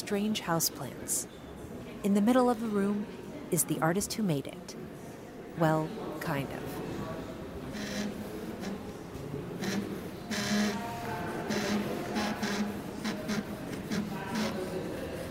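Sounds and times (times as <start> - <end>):
speech: 0.1 - 1.4, 2.0 - 4.8, 5.6 - 6.8
computer-controlled AI drawing machine sketching freehand: 7.7 - 15.2.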